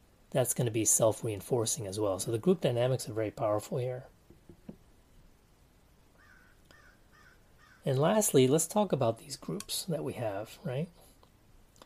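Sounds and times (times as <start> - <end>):
hiss: 0.0 - 11.8
speech: 0.3 - 4.1, 7.9 - 11.0
crow cawing outside: 6.2 - 7.8.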